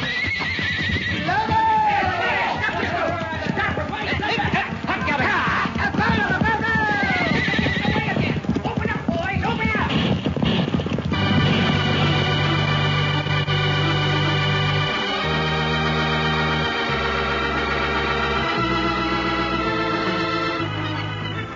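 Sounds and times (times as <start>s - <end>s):
horses whinnying: 0.0s - 21.4s
horse hooves clip-clopping: 0.0s - 21.5s
people shouting: 1.1s - 8.2s.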